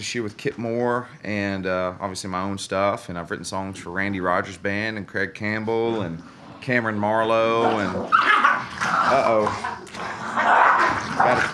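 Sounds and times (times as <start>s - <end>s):
speech: 0.0s - 9.7s, 11.2s - 11.5s
puppies whimpering: 5.6s - 11.5s
puppies yipping and barking: 7.3s - 11.5s.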